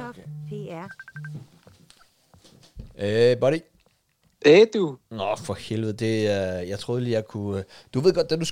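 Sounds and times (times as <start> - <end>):
Messenger call phone ringtone: 0.0 - 1.5
speech: 0.2 - 1.6, 2.4 - 3.7, 4.4 - 8.5.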